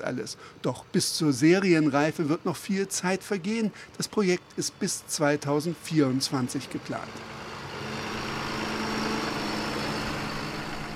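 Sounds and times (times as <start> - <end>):
speech: 0.0 - 7.4
heavy tractor engine rumbling: 0.0 - 10.9.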